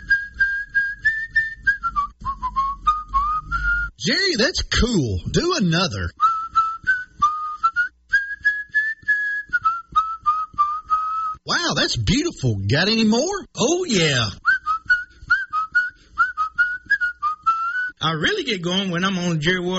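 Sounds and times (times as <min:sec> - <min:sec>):
person whistling a tune: 0:00.0 - 0:04.0, 0:06.2 - 0:11.5, 0:14.4 - 0:18.0
speech: 0:04.0 - 0:06.2, 0:11.9 - 0:14.4, 0:18.2 - 0:19.7.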